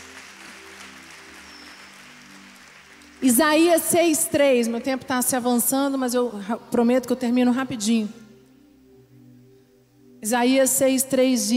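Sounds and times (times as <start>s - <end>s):
church audience applauding in a large room: 0.0s - 3.9s
low sustained musical drone: 0.0s - 11.5s
speech: 3.2s - 8.2s, 10.2s - 11.5s.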